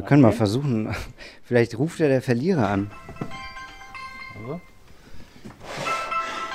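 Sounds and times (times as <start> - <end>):
speech: 0.0 - 3.4, 4.4 - 4.7
mobile phone alarm ringing in a cabinet: 2.8 - 6.5.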